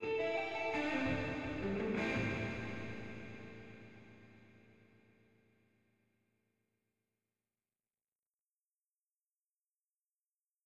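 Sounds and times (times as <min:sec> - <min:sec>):
mono guitar loop with reverb: 0:00.0 - 0:04.7.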